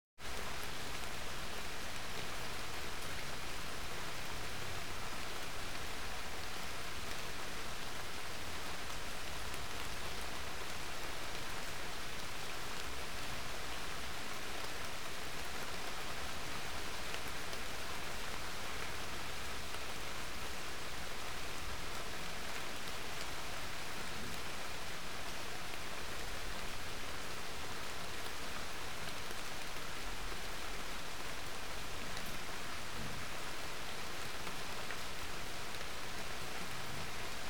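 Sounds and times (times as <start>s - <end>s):
rain: 0.2s - 37.4s.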